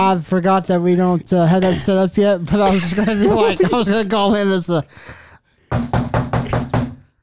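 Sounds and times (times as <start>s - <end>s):
speech: 0.0s - 6.6s
laughter: 2.6s - 4.9s
knocking on a door: 5.7s - 7.1s.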